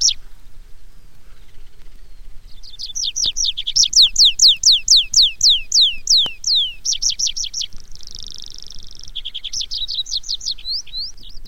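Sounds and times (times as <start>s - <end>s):
tree pipit song: 2.7s - 11.4s.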